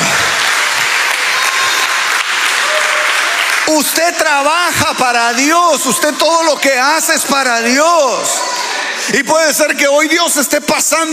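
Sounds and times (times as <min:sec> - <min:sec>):
audience applauding during preaching: 0:00.0 - 0:08.6
speech: 0:03.7 - 0:08.5, 0:09.1 - 0:11.1.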